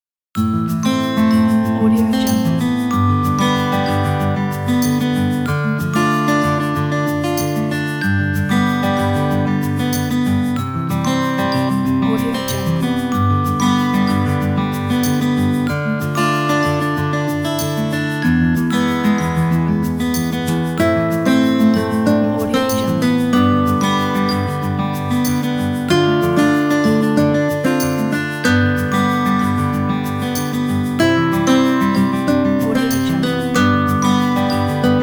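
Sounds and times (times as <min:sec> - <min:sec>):
soft sad guitars: 0:00.4 - 0:35.0.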